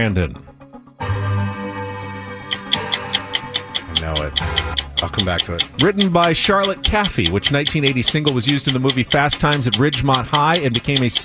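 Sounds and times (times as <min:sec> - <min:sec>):
speech: 0:00.0 - 0:00.5, 0:04.0 - 0:11.2
sustained synth chord of quiz countdown music: 0:01.0 - 0:05.3
clock-like ticks of quiz countdown music: 0:02.4 - 0:11.2.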